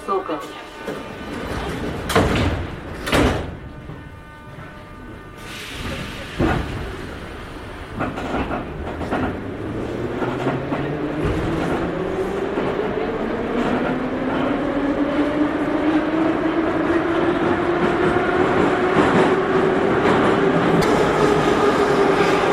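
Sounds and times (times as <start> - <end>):
metro train rumbling and clattering: 0.0 - 22.5
metro train doors sliding shut: 0.8 - 3.8, 5.4 - 11.9, 18.8 - 22.5.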